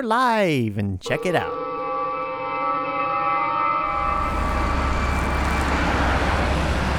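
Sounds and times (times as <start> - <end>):
speech: 0.0 - 1.6
steady horn-like tone: 1.2 - 6.9
busy city street engines and road noise: 3.9 - 6.9.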